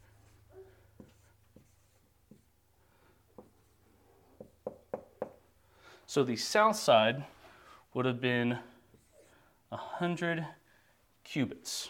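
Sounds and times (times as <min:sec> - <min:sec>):
pen scratching on paper as a diagram is drawn by hand: 0:01.0 - 0:02.5
speech: 0:06.1 - 0:07.3, 0:08.0 - 0:08.7, 0:09.7 - 0:10.6, 0:11.3 - 0:11.8.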